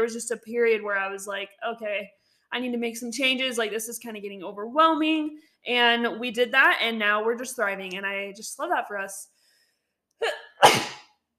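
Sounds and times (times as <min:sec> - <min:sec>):
speech: 0:00.0 - 0:09.3, 0:10.2 - 0:11.0
person sneezing: 0:10.2 - 0:11.2.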